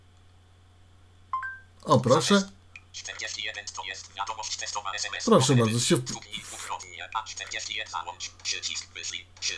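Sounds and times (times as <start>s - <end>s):
faint steady low hum: 0.0s - 9.5s
electronic phone keypad beeps while typing a text message: 1.3s - 1.7s
speech: 1.8s - 6.5s, 7.2s - 9.5s.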